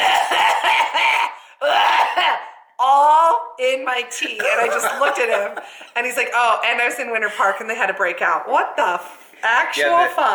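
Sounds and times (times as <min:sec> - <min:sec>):
laughter: 0:00.0 - 0:01.4, 0:04.1 - 0:06.2
person imitating a man coughing: 0:00.0 - 0:02.5
speech: 0:03.6 - 0:10.3.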